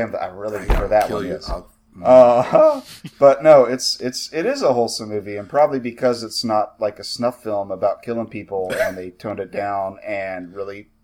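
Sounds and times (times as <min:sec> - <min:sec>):
speech: 0:00.0 - 0:10.9
hand slamming down on a tabletop: 0:00.6 - 0:01.6.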